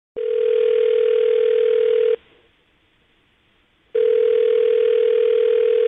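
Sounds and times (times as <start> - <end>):
telephone dial tone: 0.2 - 2.2, 4.0 - 5.8.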